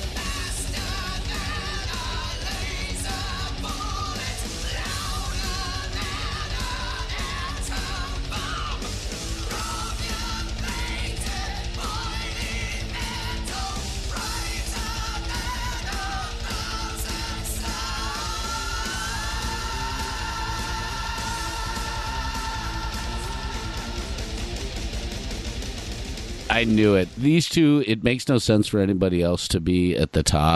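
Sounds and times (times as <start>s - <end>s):
loud dense distorted guitars: 0.0s - 28.3s
heavy metal singer's sustained high-pitched scream in concert: 0.2s - 24.4s
speech: 26.6s - 30.5s.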